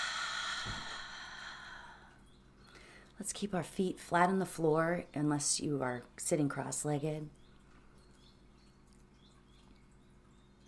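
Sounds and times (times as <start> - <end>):
slow deep breath drawn in and released: 0.0 - 3.1
speech: 3.2 - 7.4.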